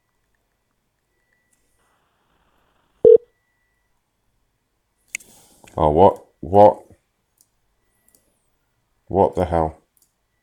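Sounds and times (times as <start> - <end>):
electronic telephone tone beep: 3.0 - 3.9
speech: 5.8 - 6.8, 9.1 - 9.8.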